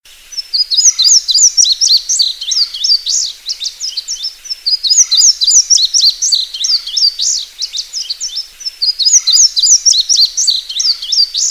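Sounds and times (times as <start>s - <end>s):
bird: 0.3s - 11.4s.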